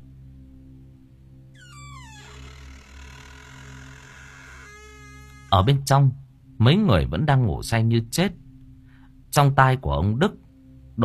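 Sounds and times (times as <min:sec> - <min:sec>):
house door slowly creaking open at night: 0:01.6 - 0:05.9
speech: 0:05.5 - 0:08.4, 0:09.3 - 0:10.4.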